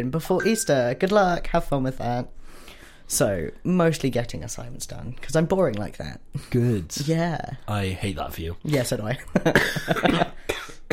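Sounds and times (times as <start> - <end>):
speech: 0.0 - 10.9
person coughing raspy coughs: 9.6 - 10.9.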